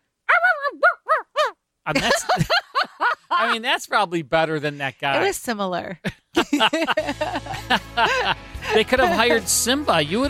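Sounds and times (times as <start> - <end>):
human voice imitating a barking dog for an old radio drama: 0.2 - 1.6
speech: 1.9 - 2.6, 3.4 - 10.2
laughter: 1.9 - 3.6, 6.4 - 9.7.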